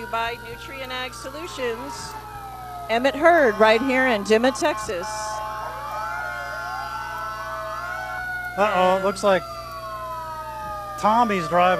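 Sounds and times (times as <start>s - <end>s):
fire department command vehicle siren wailing at a parade in Texas: 0.0s - 11.7s
speech: 0.1s - 2.3s, 2.9s - 5.3s, 8.6s - 9.6s, 11.0s - 11.7s.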